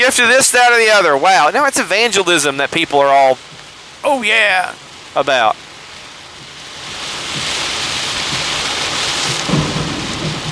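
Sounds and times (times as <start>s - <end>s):
heavy rain pouring: 0.0s - 10.5s
speech: 0.1s - 5.6s
low rumbles of thunder: 6.8s - 10.5s.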